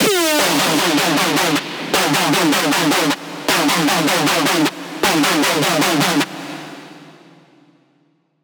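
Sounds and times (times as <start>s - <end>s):
screech music loop in D minor: 0.0s - 6.4s.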